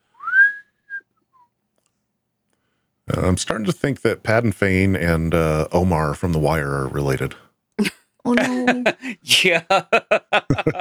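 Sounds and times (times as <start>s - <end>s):
person whistling a rising note: 0.1s - 1.0s
laughter: 3.1s - 10.7s
speech: 3.1s - 10.7s.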